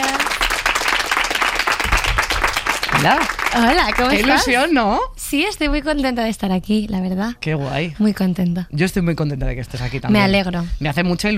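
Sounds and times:
audience applause for a guest during a live interview event: 0.0s - 4.7s
speech: 3.0s - 11.3s.

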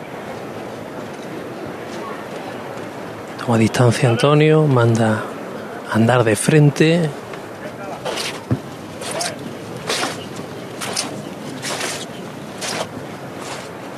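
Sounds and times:
faint murmur: 0.0s - 13.9s
speech: 3.4s - 5.3s, 5.9s - 7.2s
float bearers' sneakers shuffling and scraping in unison on pavement: 8.0s - 13.8s.

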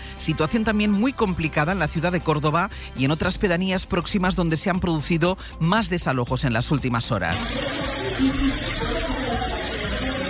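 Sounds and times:
speech: 0.2s - 9.1s
floodwater seeping and trickling through house walls indoors: 7.3s - 10.2s.

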